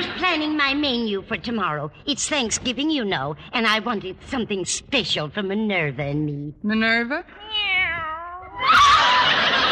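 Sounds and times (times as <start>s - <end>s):
speech: 0.2s - 7.4s
kitten meowing: 7.4s - 8.7s
laughter: 8.6s - 9.7s.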